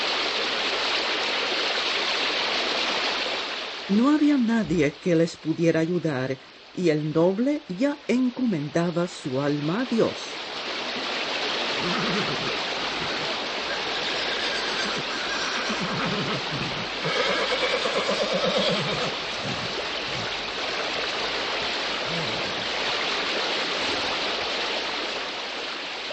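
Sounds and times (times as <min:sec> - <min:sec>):
fast-flowing river water rushing: 0:00.0 - 0:26.1
speech: 0:03.9 - 0:10.4, 0:11.8 - 0:13.1
horse neighing: 0:11.8 - 0:20.4, 0:22.0 - 0:22.7.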